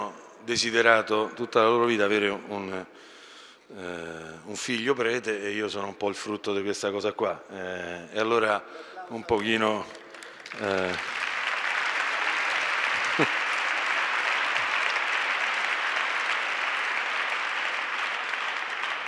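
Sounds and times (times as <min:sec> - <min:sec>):
speech: 0:00.4 - 0:03.1, 0:03.7 - 0:11.2
audience applause: 0:09.4 - 0:19.0.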